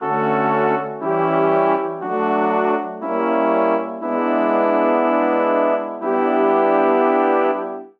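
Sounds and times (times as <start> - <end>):
brass quartet playing a playful chord progression in D major: 0.0 - 7.9.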